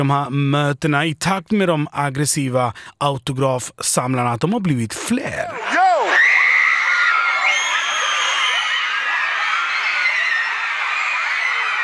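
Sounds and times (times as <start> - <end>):
speech: 0.0 - 5.9
bodyguard shouting: 5.6 - 6.2
dense crowd of fans screaming and shrieking: 5.6 - 11.8.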